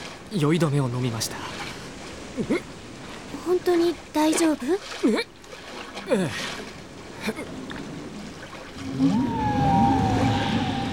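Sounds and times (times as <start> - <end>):
water noise: 0.0 - 10.9
speech: 0.3 - 1.6, 2.4 - 2.8, 3.4 - 5.4, 6.0 - 7.8, 8.8 - 9.4
whale song from the sea beneath a boat: 8.7 - 10.9.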